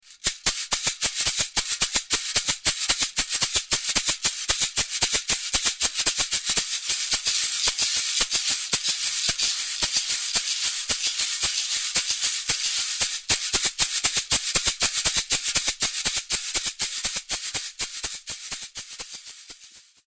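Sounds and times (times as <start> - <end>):
ganza shaker: 0.0 - 20.0.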